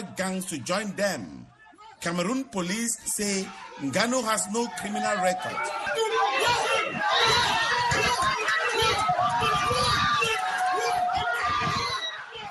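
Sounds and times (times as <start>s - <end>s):
large crowd chattering loudly at a viewing spot: 0.0s - 12.4s
speech: 0.2s - 1.4s, 2.0s - 7.6s
raised shouts in a crowd: 3.3s - 12.4s.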